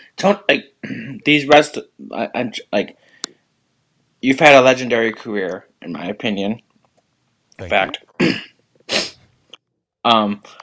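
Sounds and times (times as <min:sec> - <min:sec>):
speech: 0:00.2 - 0:03.1, 0:04.2 - 0:06.7, 0:07.6 - 0:09.1, 0:10.0 - 0:10.6
brief vocal bursts: 0:07.6 - 0:08.0
man's short sharp cough: 0:07.6 - 0:08.0.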